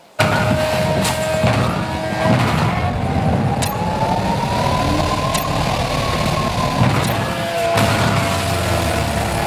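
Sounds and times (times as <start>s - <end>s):
video game car engine roaring through a stunt jump: 0.0s - 9.4s
sharp car landing thuds in a video game: 0.2s - 8.6s.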